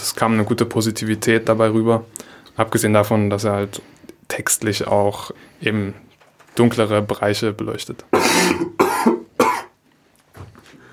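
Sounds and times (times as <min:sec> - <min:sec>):
speech: 0:00.2 - 0:09.4
harsh coughs: 0:08.2 - 0:09.8.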